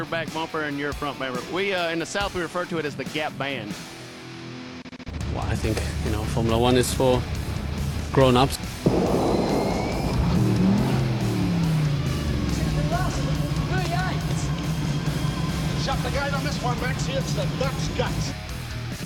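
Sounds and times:
speech: 0.0 - 4.0, 5.4 - 7.4, 8.1 - 9.4, 15.9 - 18.4
351 V8 race car engine revving: 8.9 - 18.6.

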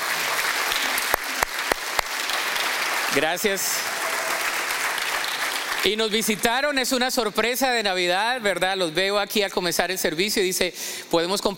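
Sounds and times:
large audience applauding at a church service: 0.0 - 6.4
speech: 3.1 - 4.0, 5.8 - 11.5.

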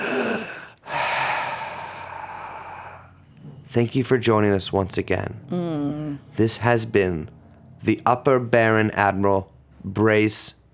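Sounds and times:
deep slow breathing: 0.0 - 3.3
speech: 3.7 - 5.7, 6.4 - 10.6.

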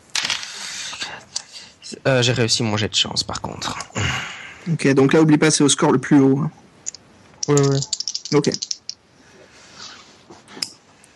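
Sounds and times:
soft hiss: 0.0 - 11.1
speech: 1.9 - 6.7, 7.5 - 8.7
dice being shaken before a roll: 7.4 - 9.0.

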